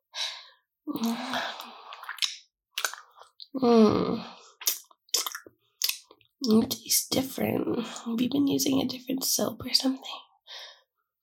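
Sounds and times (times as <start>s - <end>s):
speech: 0.9s - 1.6s, 3.6s - 4.4s, 6.4s - 10.2s
wet mouth noises: 0.9s - 3.6s, 4.6s - 6.6s.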